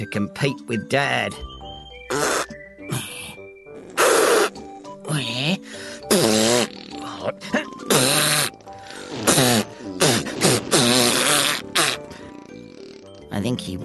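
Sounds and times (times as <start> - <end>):
speech: 0.0 - 1.5
loud farts: 2.1 - 2.6, 3.7 - 4.7, 6.0 - 13.3.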